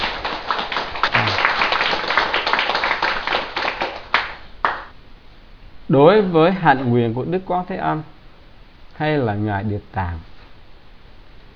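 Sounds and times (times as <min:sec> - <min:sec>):
crowd applause: 0:00.0 - 0:04.9
speech: 0:05.9 - 0:08.2, 0:09.0 - 0:10.3.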